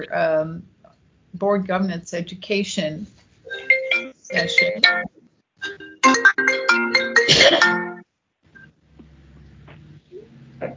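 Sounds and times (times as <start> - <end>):
speech: 0.0 - 0.7, 1.3 - 3.6, 4.3 - 5.8
mobile phone shutdown melody of bright electronic tones: 3.5 - 8.0
faint low rustling: 8.5 - 10.7.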